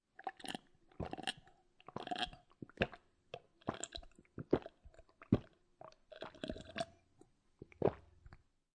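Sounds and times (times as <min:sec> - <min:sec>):
person swallowing water: 0:00.2 - 0:01.4, 0:03.7 - 0:06.9, 0:07.6 - 0:08.2
person slurping water from a drinking glass: 0:00.2 - 0:07.0, 0:07.6 - 0:08.4.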